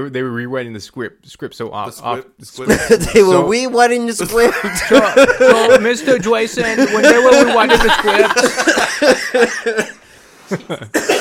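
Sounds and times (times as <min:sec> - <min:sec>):
speech: 0:00.0 - 0:11.1
person coughing: 0:02.7 - 0:03.4, 0:10.6 - 0:11.1
laughter: 0:02.7 - 0:03.5, 0:04.2 - 0:11.0.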